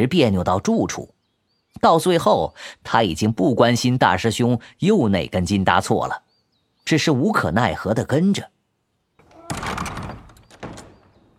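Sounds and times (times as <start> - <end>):
speech: 0.0 - 1.2, 1.8 - 6.2, 6.8 - 8.6
door slamming shut: 9.2 - 11.3.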